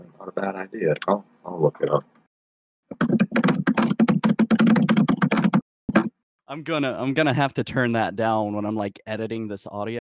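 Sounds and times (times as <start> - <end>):
speech: 0.0 - 2.2, 6.5 - 10.0
typing on a computer keyboard: 3.0 - 5.6.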